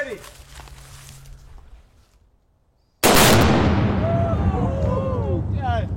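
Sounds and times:
powerful explosion booming: 3.0s - 5.9s.

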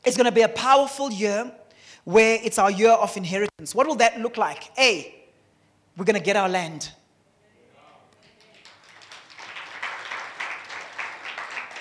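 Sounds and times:
speech: 0.0s - 5.2s, 6.0s - 7.0s
crowd applauding: 8.2s - 11.7s.

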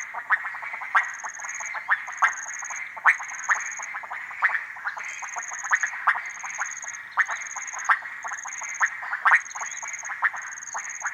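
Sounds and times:
frogs croaking and clicking at ponds in humid cloud forest: 0.0s - 11.1s.

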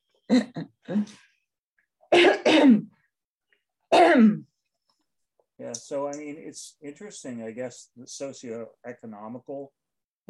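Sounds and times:
speech: 0.3s - 1.3s, 3.9s - 4.5s, 5.6s - 10.2s
person clearing throat: 2.1s - 3.0s, 3.9s - 4.5s
person coughing: 2.1s - 3.0s, 3.9s - 4.5s.

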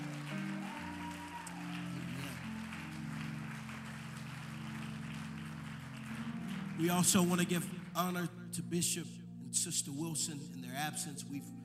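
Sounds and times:
audience clapping: 0.0s - 8.1s
sustained organ chords: 0.0s - 11.6s
speech: 6.8s - 11.6s.

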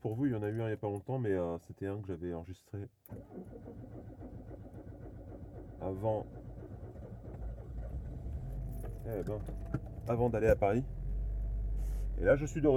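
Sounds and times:
speech: 0.1s - 4.4s, 5.8s - 6.4s, 9.0s - 11.0s, 12.2s - 12.7s
car engine humming inside the cabin while driving in thick fog in southwest France: 6.8s - 12.7s.

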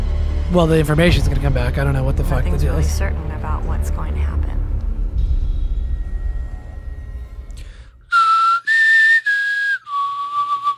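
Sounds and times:
low rumble: 0.0s - 8.0s
speech: 0.5s - 4.6s
person whistling a short four-note signal tune: 8.1s - 10.7s.

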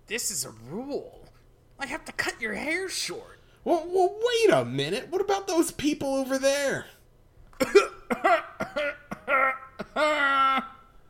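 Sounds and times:
speech: 0.1s - 7.0s, 7.6s - 8.5s
crouching man coughing: 7.6s - 10.8s.

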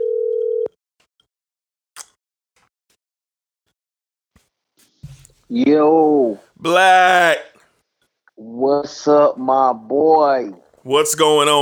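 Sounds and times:
loud steady telephone tone while placing a call: 0.0s - 0.7s
speech: 5.5s - 7.5s, 8.4s - 11.6s.

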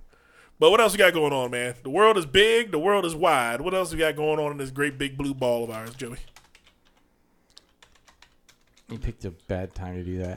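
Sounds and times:
speech: 0.6s - 6.4s, 8.9s - 10.3s
fingers typing on a computer keyboard: 5.6s - 10.3s.

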